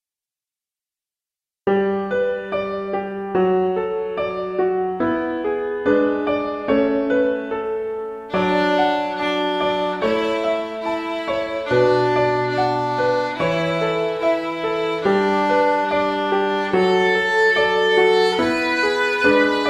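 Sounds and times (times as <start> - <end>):
piano: 1.7 - 19.6
violin: 8.3 - 19.6.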